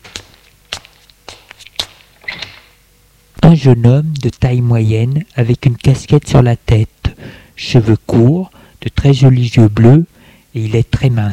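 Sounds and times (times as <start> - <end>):
heavy footsteps behind an apartment door: 0.0 - 2.7
door opening with knocks and clatter: 2.2 - 2.8
speech: 3.5 - 11.3.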